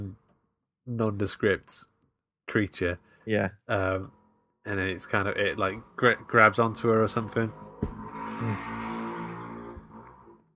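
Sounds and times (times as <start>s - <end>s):
speech: 0.8s - 1.9s, 2.5s - 7.7s
small moped engine passing: 5.7s - 10.4s.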